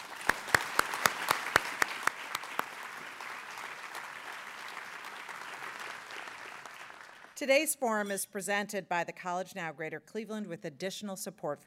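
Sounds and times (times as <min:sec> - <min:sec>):
audience applause: 0:00.0 - 0:07.4
speech: 0:07.4 - 0:11.6.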